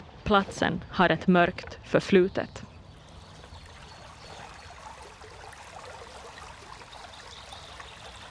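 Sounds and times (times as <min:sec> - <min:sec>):
speech: 0:00.3 - 0:02.7
babbling brook water trickling and gurgling: 0:02.0 - 0:08.2.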